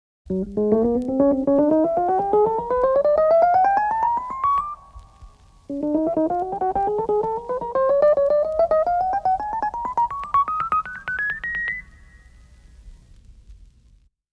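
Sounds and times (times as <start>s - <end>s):
keyboard playing a scale: 0.3s - 4.8s, 5.7s - 12.0s.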